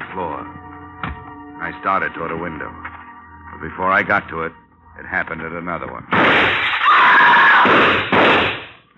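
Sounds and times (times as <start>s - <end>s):
speech: 0.2s - 0.6s, 1.6s - 2.9s, 3.6s - 6.6s, 7.6s - 8.6s
loud crashing noise: 6.1s - 6.9s, 7.5s - 8.8s
woman screaming from a gallery building at night: 6.8s - 7.7s
thump: 7.7s - 8.7s.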